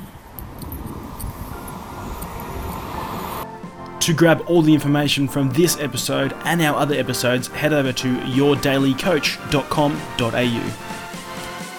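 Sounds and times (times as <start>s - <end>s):
traffic noise: 0.0s - 4.0s
speech: 4.0s - 10.9s.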